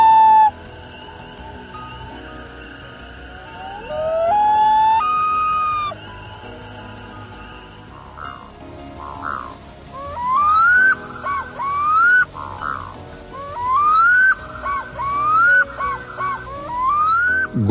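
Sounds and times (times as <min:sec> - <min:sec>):
black-throated loon calling: 0:03.6 - 0:06.0, 0:10.2 - 0:12.9, 0:13.5 - 0:17.7.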